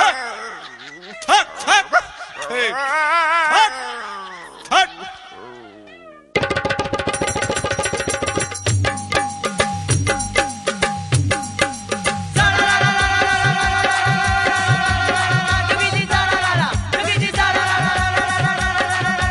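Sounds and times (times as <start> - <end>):
laughter: 0.0 - 5.8
dog yelping and whining: 4.2 - 6.4
loud rhythmic music with steady percussion: 6.4 - 19.2.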